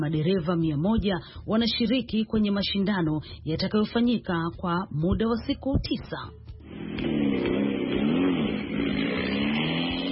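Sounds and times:
speech: 0.0 - 6.4
Rover Vitesse rally car engine revving at a rally in Kenya: 6.6 - 10.1.

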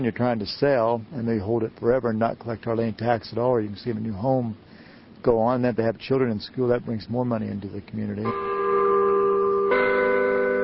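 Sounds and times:
speech: 0.0 - 8.5
church bell ringing over a town square: 8.2 - 10.6.

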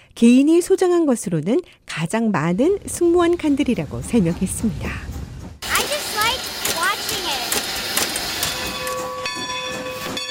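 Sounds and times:
speech: 0.2 - 5.1
American steam locomotive hissing steam on a Pennsylvania line: 3.5 - 10.2.

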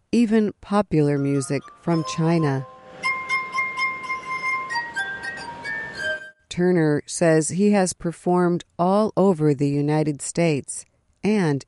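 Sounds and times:
speech: 0.1 - 2.7, 6.6 - 11.6
glass harp of rubbed wine glasses playing sustained ringing tones in a slow melody: 1.1 - 6.4.

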